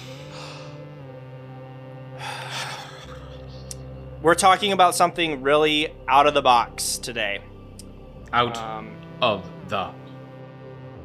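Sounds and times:
deep breathing: 0.0s - 1.0s, 2.1s - 4.2s
steady tonal background: 0.0s - 11.0s
speech: 4.2s - 7.5s, 8.3s - 10.0s.

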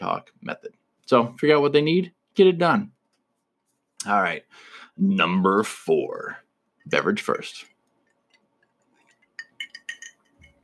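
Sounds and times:
speech: 0.0s - 3.0s, 4.0s - 7.7s
large ice cubes clinking against a glass: 9.1s - 10.6s.

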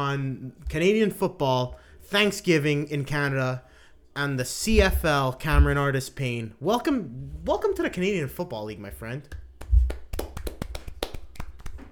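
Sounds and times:
speech: 0.0s - 9.4s
light applause: 9.6s - 11.8s.

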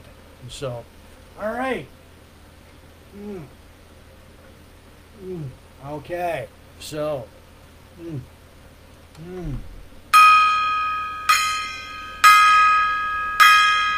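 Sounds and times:
speech: 0.4s - 2.0s, 3.1s - 3.6s, 5.2s - 7.4s, 8.0s - 8.3s, 9.2s - 9.7s
gong being banged: 10.1s - 13.9s.

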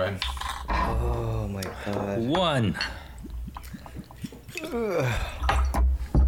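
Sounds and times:
speech: 0.0s - 3.0s, 4.7s - 5.4s
soft ticks and drips: 0.0s - 6.2s
liquor pouring into shot glasses: 1.5s - 5.7s.

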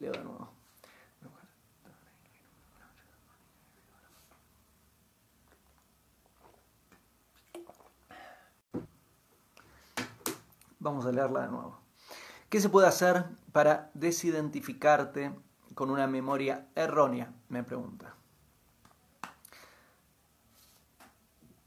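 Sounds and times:
faint breaths: 0.6s - 4.4s, 11.9s - 12.5s, 19.4s - 20.8s
sips and swallows of water: 7.4s - 8.1s
speech: 10.8s - 11.8s, 12.5s - 18.2s.

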